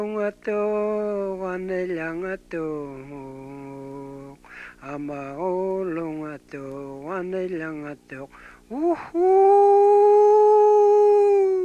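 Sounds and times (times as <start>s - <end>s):
speech: 0.0s - 11.6s
person imitating a wolf howl: 8.7s - 11.6s.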